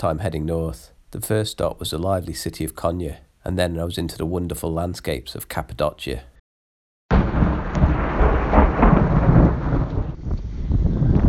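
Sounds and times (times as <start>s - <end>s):
speech: 0.0s - 6.3s
steady hiss of heavy rain: 7.1s - 10.3s
deep rolling thunder: 7.1s - 11.2s.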